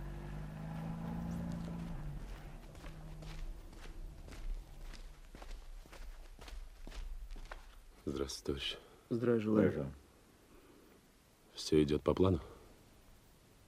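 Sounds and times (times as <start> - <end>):
low engine hum: 0.0 - 6.1
footsteps walking at an even pace: 0.4 - 8.1
speech: 8.1 - 10.0, 11.6 - 12.5.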